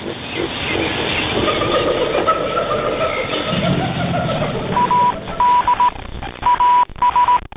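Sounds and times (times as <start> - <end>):
rumbling ship-like drone: 0.0 - 7.0
Morse code beeps: 4.8 - 7.5.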